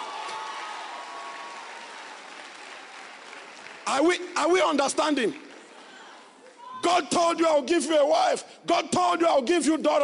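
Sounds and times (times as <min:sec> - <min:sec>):
congregation clapping: 0:00.0 - 0:06.6
speech: 0:03.9 - 0:05.4, 0:06.9 - 0:10.0.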